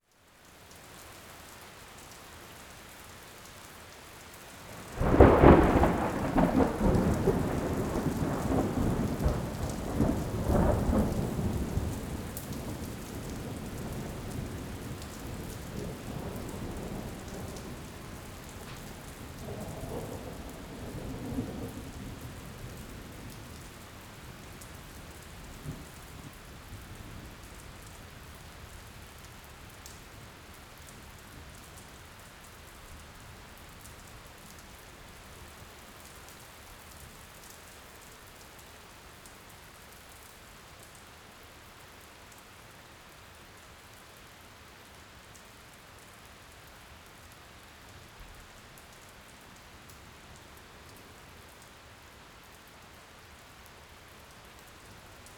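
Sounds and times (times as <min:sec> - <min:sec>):
storm heard from inside a garage with door open: 0:04.7 - 0:26.4.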